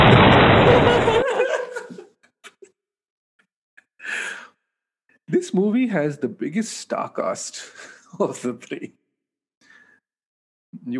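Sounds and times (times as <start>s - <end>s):
booming explosion sound effect: 0.0s - 1.6s
laughter: 0.6s - 2.7s
speech: 5.3s - 9.0s.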